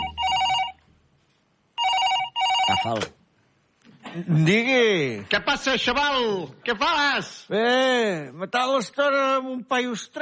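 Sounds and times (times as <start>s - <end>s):
telephone ringing with an incoming call: 0.0s - 0.9s, 1.8s - 3.0s
speech: 2.8s - 3.2s, 4.1s - 10.1s.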